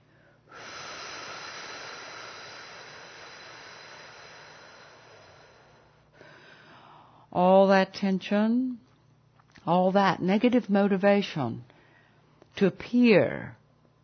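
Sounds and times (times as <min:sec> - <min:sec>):
slow breathing in a guided breathing exercise: 0:00.0 - 0:07.3, 0:11.7 - 0:12.4
speech: 0:07.3 - 0:08.8, 0:09.6 - 0:11.7, 0:12.6 - 0:13.6.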